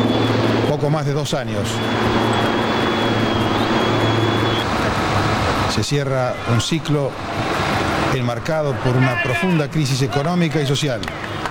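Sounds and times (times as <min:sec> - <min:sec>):
helicopter rotor thumping: 0:00.0 - 0:08.5
presidential helicopter engine roaring on takeoff: 0:00.0 - 0:11.4
speech: 0:00.8 - 0:02.6, 0:05.8 - 0:07.4, 0:08.1 - 0:11.3.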